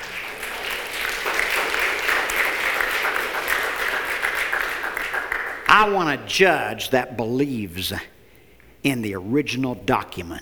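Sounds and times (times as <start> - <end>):
audience applause at a political speech: 0.0 - 6.3
speech: 5.8 - 8.1, 8.8 - 10.4.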